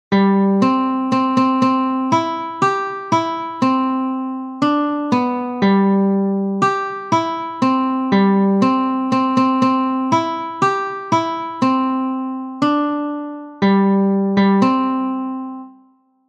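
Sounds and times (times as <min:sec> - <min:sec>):
guitar melody on several strings: 0:00.1 - 0:16.0.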